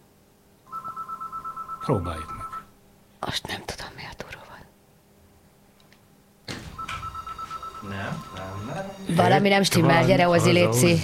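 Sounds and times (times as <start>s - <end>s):
telephone ringing: 0.7s - 2.7s, 6.7s - 10.0s
speech: 1.8s - 2.4s, 3.2s - 3.7s, 8.4s - 11.0s.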